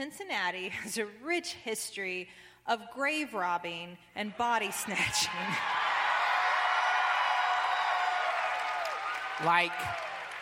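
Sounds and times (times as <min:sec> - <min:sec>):
speech: 0:00.0 - 0:05.8, 0:09.4 - 0:10.1
live audience cheering and applauding: 0:05.3 - 0:10.3.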